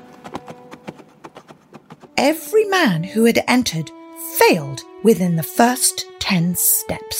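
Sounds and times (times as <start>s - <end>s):
horse hooves clip-clopping on a hard surface: 0.0s - 2.5s
speech: 2.2s - 7.1s.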